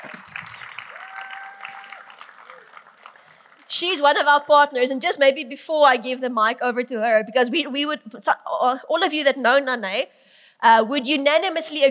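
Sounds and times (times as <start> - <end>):
church crowd applauding: 0.0 - 4.7
speech: 3.8 - 11.9.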